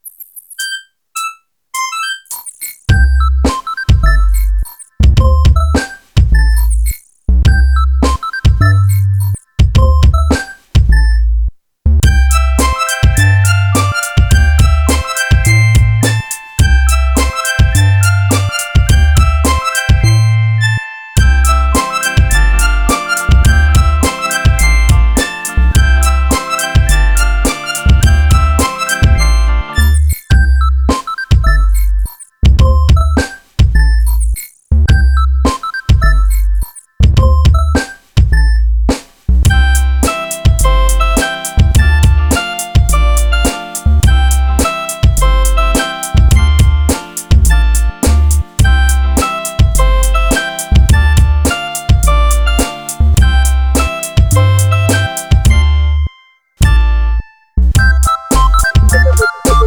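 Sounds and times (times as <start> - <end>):
hip hop mobile phone ringtone: 0.6 - 11.2, 12.0 - 38.7, 39.5 - 59.6.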